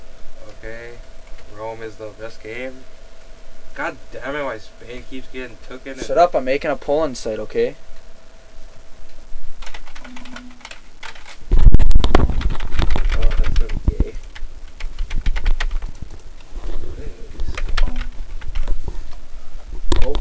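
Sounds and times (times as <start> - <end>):
speech: 0.7 - 3.0, 3.8 - 7.9
typing on a computer keyboard: 9.6 - 11.4, 12.1 - 15.9, 17.5 - 18.7.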